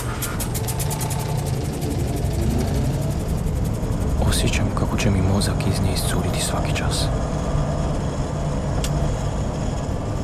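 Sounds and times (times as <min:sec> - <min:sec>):
road hiss: 0:00.0 - 0:07.1
car engine droning inside a moving car: 0:00.0 - 0:10.2
speech: 0:04.4 - 0:07.5.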